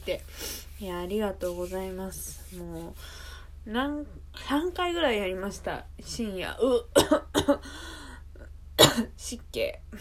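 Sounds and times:
speech: 0.1 - 8.0, 9.0 - 9.9
faint breath: 3.0 - 3.6, 7.6 - 8.2
person coughing sharply from dry air caused by heating: 7.0 - 7.6, 8.8 - 9.1.

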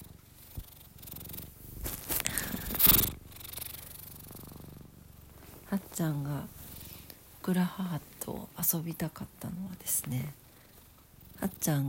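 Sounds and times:
cat purring: 0.0 - 11.8
scratchy rubbing and brushing noises: 0.4 - 4.5
speech: 6.0 - 6.6, 7.4 - 10.4, 11.4 - 11.8.

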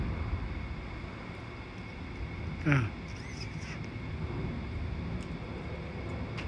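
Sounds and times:
jet aircraft roar overhead: 0.0 - 6.4
murmured voice: 2.6 - 3.0
speech: 2.6 - 3.1.

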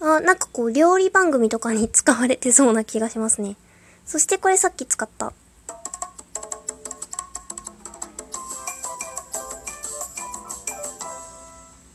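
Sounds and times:
speech: 0.2 - 5.4
tropical island style jingle with bright plucked notes: 5.7 - 11.8.

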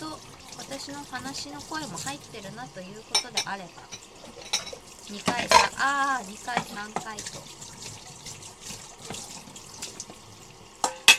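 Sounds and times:
tap water running into a sink while washing dishes: 0.0 - 11.1
speech: 0.7 - 4.5, 5.1 - 7.6
dishes clinking and clattering: 3.1 - 5.9, 10.8 - 11.1.

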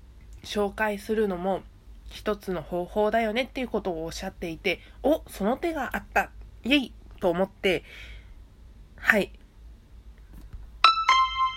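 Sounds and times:
faint hum: 0.0 - 11.5
speech: 0.5 - 8.1, 9.0 - 9.4
bright two-note ding-dong chime: 10.8 - 11.5.

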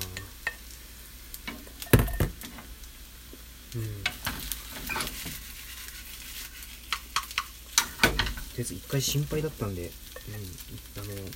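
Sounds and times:
fried rice stir-frying in a frying pan: 0.0 - 11.3
speech: 3.7 - 4.1, 8.6 - 11.3
spatula scraping and clattering against metal pan: 4.2 - 8.0.

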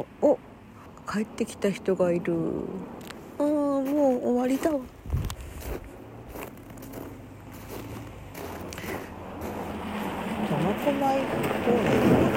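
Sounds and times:
speech: 0.0 - 0.5, 1.1 - 3.5, 4.2 - 5.0, 10.8 - 12.2
low outdoor rumble: 0.0 - 12.3
footsteps crunching on snow: 3.6 - 11.0.

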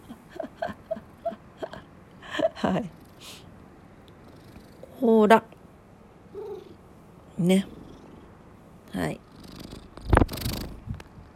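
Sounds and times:
speech: 2.6 - 3.4, 5.0 - 5.6, 7.4 - 7.8, 9.0 - 9.2
cat purring: 2.7 - 5.3, 6.3 - 11.3.

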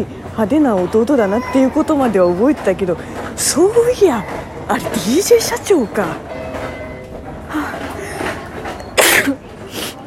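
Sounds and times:
speech: 0.0 - 6.3
sneeze: 9.0 - 9.4.

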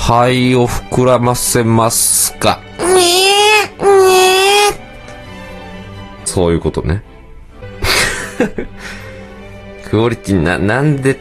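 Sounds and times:
speech: 0.1 - 4.2, 6.4 - 7.1, 9.9 - 11.1
voice imitating a newborn crying: 2.8 - 4.8
laughter: 7.8 - 9.0.

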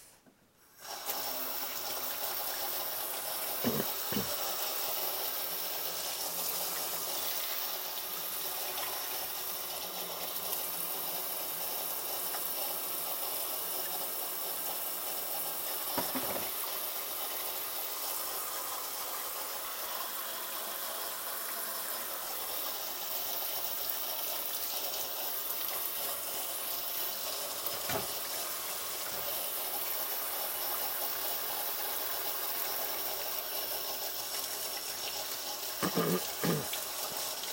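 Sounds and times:
running tap water: 0.7 - 37.5
dishes clinking and knocking while being washed: 16.0 - 16.5.

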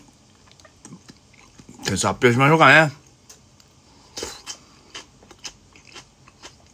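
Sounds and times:
chewing and crunchy biting on food: 0.0 - 1.9, 4.1 - 6.7
speech: 1.9 - 3.0.

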